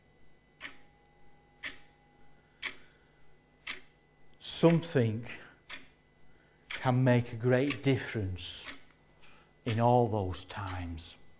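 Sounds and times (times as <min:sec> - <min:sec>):
clock ticking: 0:00.6 - 0:00.8, 0:01.6 - 0:01.9, 0:02.6 - 0:02.8, 0:03.6 - 0:03.9, 0:05.7 - 0:05.9, 0:06.7 - 0:07.0, 0:07.6 - 0:08.9, 0:09.7 - 0:09.9, 0:10.5 - 0:10.9
speech: 0:04.6 - 0:05.4, 0:06.8 - 0:08.8, 0:09.6 - 0:11.2.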